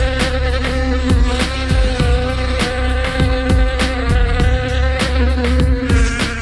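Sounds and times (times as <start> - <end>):
steady thumping beat: 0.0 - 6.3
voice imitating a buzzing fly in a song: 0.0 - 6.3.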